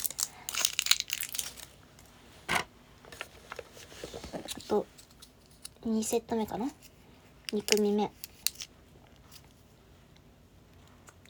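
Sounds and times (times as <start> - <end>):
sealed package ripping open: 0.0 - 1.8
crinkling plastic of a sealed package: 0.0 - 5.7
soft rustles: 2.2 - 5.5
speech: 4.7 - 5.0, 5.8 - 6.9, 7.5 - 8.2.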